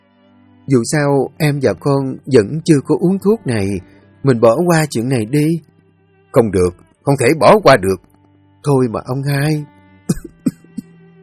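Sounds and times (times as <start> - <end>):
speech: 0.7 - 5.7, 6.3 - 9.7
woman coughing: 10.1 - 10.9.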